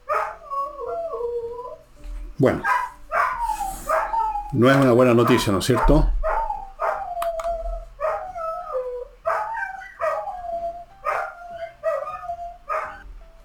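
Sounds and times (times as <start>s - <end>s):
dogs barking and howling at passing siren: 0.0s - 13.1s
speech: 2.4s - 2.8s, 4.5s - 6.2s
passing vehicle siren wailing: 3.3s - 13.1s.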